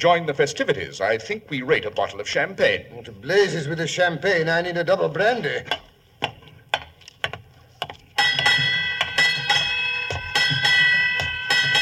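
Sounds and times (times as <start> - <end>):
speech: 0.0 - 5.9
ship's bell striking eight bells at midnight on New Year's: 8.2 - 11.8.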